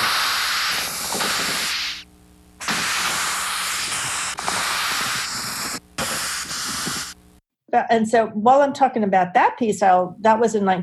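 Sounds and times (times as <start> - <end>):
Madagascar hissing cockroach distress hissing: 0.0 - 2.0, 2.6 - 7.2
speech: 7.7 - 10.8.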